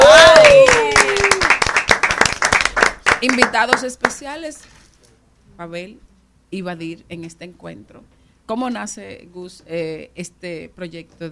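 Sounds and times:
person whooping: 0:00.0 - 0:01.6
audience applauding to welcome a guest: 0:00.0 - 0:04.2
speech: 0:03.2 - 0:04.8, 0:05.6 - 0:11.3.

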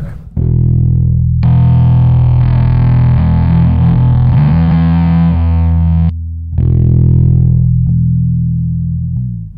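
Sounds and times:
electric guitar chords through a distortion and semi-fuzz pedal: 0:00.3 - 0:09.5.

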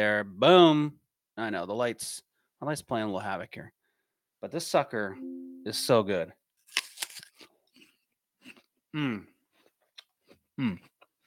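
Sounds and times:
speech: 0:00.0 - 0:03.8, 0:04.4 - 0:06.4, 0:08.9 - 0:09.3, 0:10.6 - 0:10.9
crisp crunch of biting into a Pixie Crunch apple: 0:06.7 - 0:08.8.

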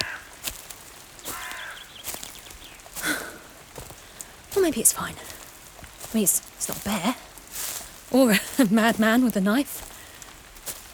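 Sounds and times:
crow cawing: 0:00.0 - 0:00.6, 0:01.2 - 0:02.2
speech: 0:04.6 - 0:05.4, 0:06.1 - 0:07.3, 0:08.1 - 0:09.9.

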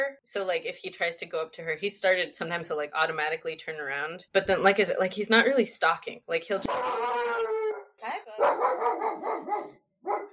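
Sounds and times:
speech: 0:00.1 - 0:09.0
dog howling at a window: 0:06.7 - 0:10.3.

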